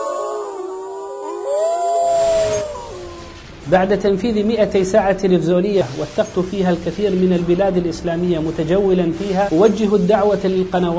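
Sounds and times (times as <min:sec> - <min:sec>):
wolves howling in chorus: 0:00.0 - 0:03.4
speech: 0:03.7 - 0:10.9.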